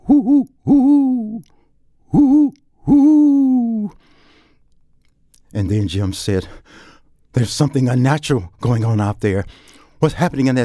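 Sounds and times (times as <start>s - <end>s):
owl hooting: 0.0s - 1.5s, 2.1s - 3.9s
speech: 5.7s - 6.8s, 7.4s - 10.6s.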